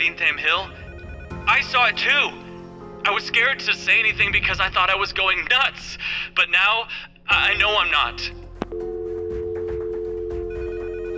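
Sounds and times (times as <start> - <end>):
speech: 0.0 - 0.8, 1.5 - 2.4, 3.0 - 8.9
several telephones ringing at a police station: 0.0 - 2.8, 8.7 - 11.1.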